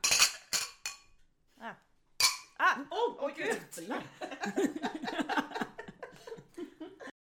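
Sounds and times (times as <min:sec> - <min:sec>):
glasses clinking together in a toast: 0:00.0 - 0:01.2, 0:02.2 - 0:02.6
speech: 0:01.6 - 0:01.9, 0:02.7 - 0:05.4
laughter: 0:03.9 - 0:07.2.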